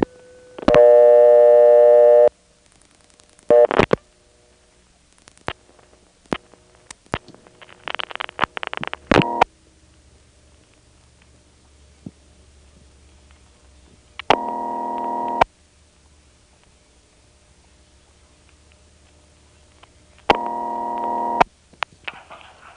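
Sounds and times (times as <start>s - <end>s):
telephone dial tone: 0.0s - 2.3s, 9.2s - 9.5s, 14.3s - 15.4s, 20.3s - 21.4s.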